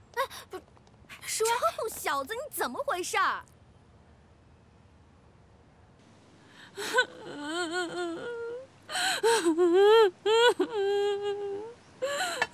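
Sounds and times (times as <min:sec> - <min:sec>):
speech: 0:01.4 - 0:03.6, 0:06.8 - 0:12.5
person crying and sobbing: 0:06.6 - 0:12.5.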